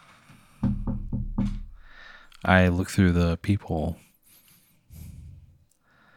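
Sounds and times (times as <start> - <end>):
sharp knocks on a wooden door: 0.6 - 2.1
speech: 2.4 - 4.1.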